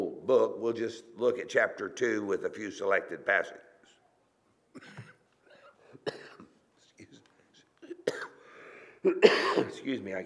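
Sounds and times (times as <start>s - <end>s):
speech: 0.3s - 3.7s, 9.0s - 10.2s
person coughing sharply: 4.7s - 6.6s, 7.8s - 8.4s, 9.0s - 9.8s.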